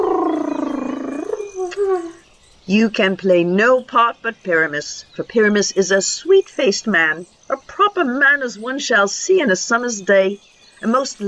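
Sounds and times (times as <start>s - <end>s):
human voice imitating a gentle lion roar: 0.0s - 2.2s
speech: 2.7s - 11.2s.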